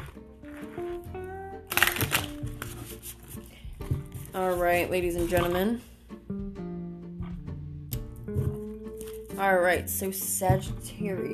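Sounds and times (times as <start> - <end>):
deck of cards being shuffled: 0.0 - 1.0, 1.7 - 5.6
soft music: 0.0 - 11.3
speech: 4.4 - 5.9, 9.4 - 11.3.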